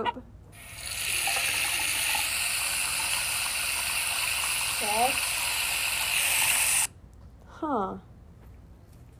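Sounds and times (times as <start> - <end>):
speech: 0.0 - 0.8, 4.8 - 5.3, 7.6 - 8.1
water running from a tap: 0.6 - 6.9.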